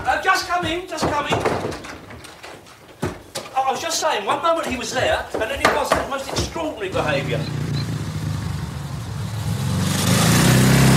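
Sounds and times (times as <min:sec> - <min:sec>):
speech: 0:00.6 - 0:01.4, 0:03.7 - 0:07.7
motorcycle engine revving: 0:07.0 - 0:10.9.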